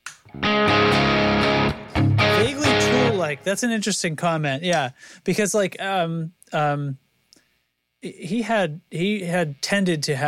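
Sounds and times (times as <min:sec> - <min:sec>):
electric guitar distorted chords through an overdriven JTM45 tube amp bright channel: 0:00.2 - 0:03.5
speech: 0:03.2 - 0:07.0, 0:08.0 - 0:10.2.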